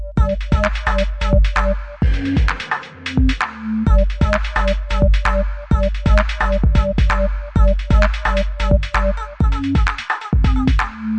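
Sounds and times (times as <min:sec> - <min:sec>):
130 bpm breakbeat drum loops and breaks: 0:00.2 - 0:11.1.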